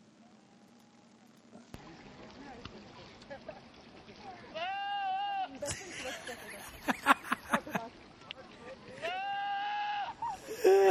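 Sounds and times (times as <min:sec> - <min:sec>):
goats bleating: 0:04.5 - 0:05.6, 0:09.0 - 0:10.3
laughter: 0:05.6 - 0:07.9, 0:10.1 - 0:10.8.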